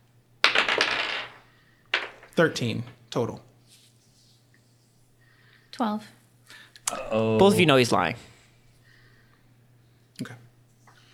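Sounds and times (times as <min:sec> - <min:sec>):
dice rolled for an insight check clattering onto a hard table: 0:00.4 - 0:03.0
speech: 0:02.4 - 0:03.5, 0:05.8 - 0:06.2, 0:06.9 - 0:08.3, 0:10.2 - 0:10.4.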